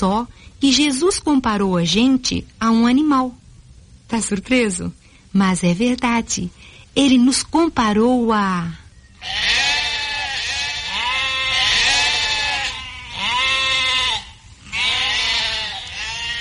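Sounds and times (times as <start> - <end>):
speech: 0.0 - 3.4, 4.1 - 9.5
sheep bleating: 9.2 - 16.4.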